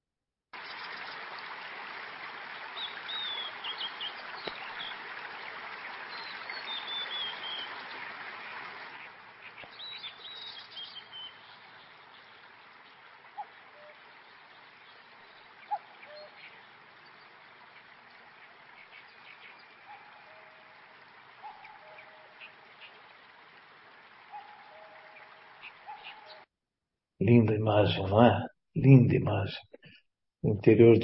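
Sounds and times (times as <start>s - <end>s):
small stream rushing past turning wooden water wheels: 0.6s - 26.4s
speech: 27.2s - 29.8s, 30.4s - 31.0s.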